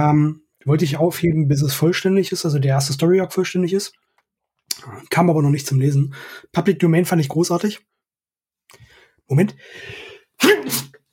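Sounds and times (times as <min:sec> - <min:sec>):
speech: 0:00.0 - 0:04.0, 0:04.7 - 0:07.9, 0:08.7 - 0:11.0
sneeze: 0:10.4 - 0:11.0.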